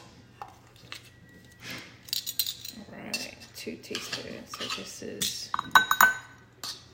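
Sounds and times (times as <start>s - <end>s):
half-teaspoon spoon clinking while measuring baking powder into a bowl: 2.1s - 3.3s, 3.9s - 6.9s.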